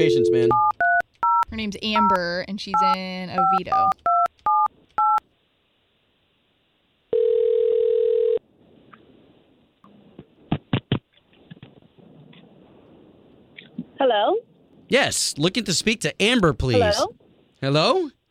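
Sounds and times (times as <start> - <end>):
speech: 0.0 - 0.8, 1.6 - 4.1, 14.0 - 18.2
steady telephone tone: 0.0 - 2.2, 7.1 - 8.4
touch-tone beeps of a telephone number being dialled: 0.0 - 5.2.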